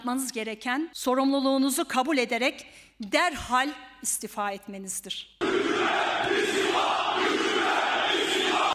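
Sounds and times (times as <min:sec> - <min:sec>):
speech: 0:00.0 - 0:07.0
large stadium crowd chanting slogans: 0:05.4 - 0:08.7.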